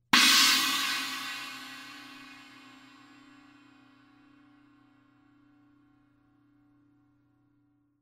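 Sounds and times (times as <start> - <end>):
inverted china crash cymbal: 0.1 - 3.6.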